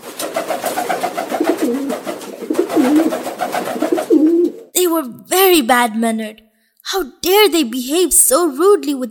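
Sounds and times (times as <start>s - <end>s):
pigeon cooing: 1.2s - 4.7s
speech: 4.9s - 9.0s.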